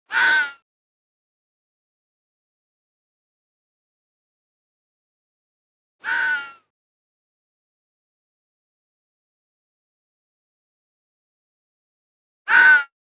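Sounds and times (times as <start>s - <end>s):
fox crying: 0.1s - 0.6s, 6.0s - 6.7s, 12.5s - 12.9s.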